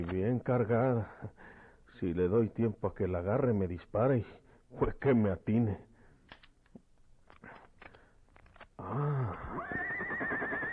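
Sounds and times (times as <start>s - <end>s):
speech: 0.0s - 1.4s, 2.0s - 5.9s, 8.8s - 10.4s
horse neighing: 8.8s - 10.7s.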